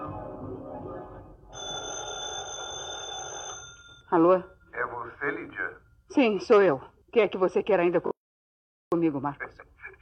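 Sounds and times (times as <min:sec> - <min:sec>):
house telephone ringing with a warbling electronic tone: 0:01.5 - 0:05.9
speech: 0:04.1 - 0:04.5, 0:05.2 - 0:08.1, 0:09.0 - 0:09.7.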